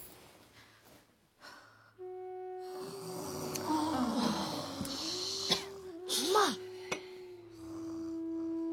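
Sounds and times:
person snoring loudly while asleep: 2.7 - 8.7.

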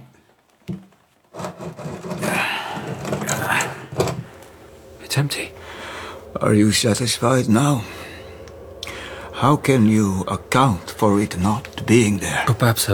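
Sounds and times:
turnscrew working at the screws of a wooden coffin lid: 1.3 - 6.2
speech: 5.2 - 5.6, 6.4 - 8.1, 9.4 - 12.9.

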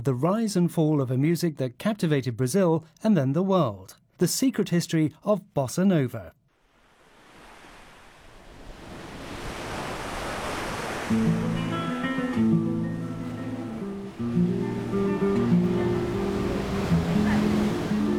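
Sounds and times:
speech: 0.0 - 6.4, 11.1 - 11.4
ocean waves rolling and washing onto a beach: 6.7 - 18.1.

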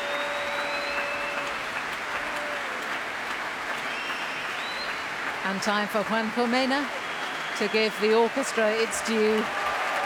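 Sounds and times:
audience whistles: 0.0 - 1.4, 3.9 - 5.1, 7.0 - 7.7
large concert audience applause and cheering for an orchestra's flautist: 0.0 - 10.0
speech: 5.5 - 7.0, 7.6 - 9.6.

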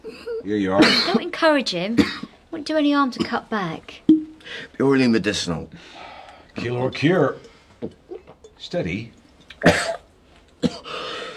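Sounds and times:
rough dry coughs from someone with a lingering cough: 0.0 - 1.3, 2.0 - 2.4, 3.2 - 3.5, 9.5 - 11.3
speech: 0.4 - 6.0, 6.6 - 8.0, 8.6 - 10.0.

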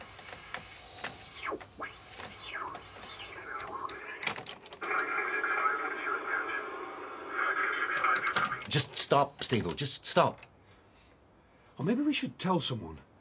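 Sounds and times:
loud buzzing static hiss: 0.0 - 10.4
warbling swooping electronic whistles: 0.8 - 4.2
speech: 8.7 - 10.5, 11.8 - 13.1.

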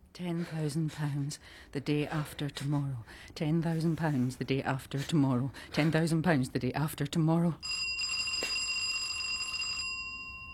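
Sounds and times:
speech: 0.2 - 8.0
apartment doorbell electronic buzz: 7.6 - 10.5.

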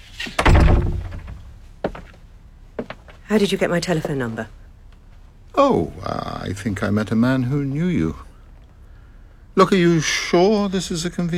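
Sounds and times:
door shutting with a heavy thunk: 0.3 - 1.4
speech: 3.3 - 4.6, 5.6 - 8.3, 9.6 - 11.3.

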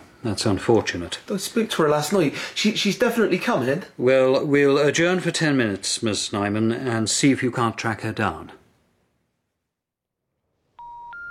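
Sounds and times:
speech: 0.2 - 8.6
touch-tone keypad beeps dialing a phone number on a mobile: 10.8 - 11.3.

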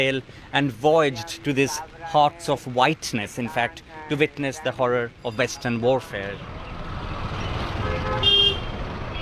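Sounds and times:
speech: 0.0 - 6.6
car driving in Calcutta south of the city: 0.0 - 9.1
short bright horn toot: 7.7 - 9.1.

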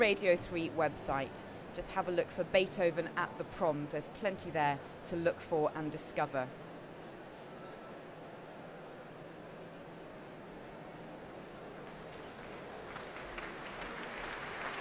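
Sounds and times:
speech: 0.0 - 6.6
large audience applauding in a reverberant concert hall: 11.8 - 14.7.

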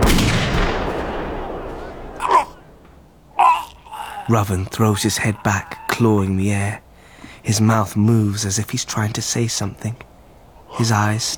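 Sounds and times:
rifle gunshot: 0.0 - 3.1
speech: 4.3 - 6.8, 7.4 - 10.1, 10.7 - 11.3.

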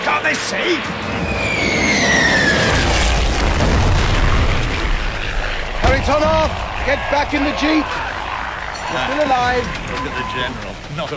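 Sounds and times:
speech: 0.2 - 1.8, 6.0 - 8.0, 8.9 - 11.1
thin falling whistle-like tone of a dropping bomb: 1.1 - 2.9, 9.8 - 10.5
heavy explosion of a bomb dropped by aircraft: 2.0 - 8.7.

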